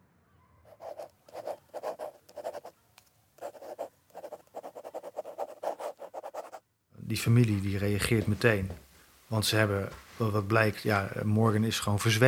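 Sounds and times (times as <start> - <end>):
pen scratching on paper writing a letter by hand: 0.7 - 2.7, 3.4 - 6.6
speech: 7.1 - 12.2.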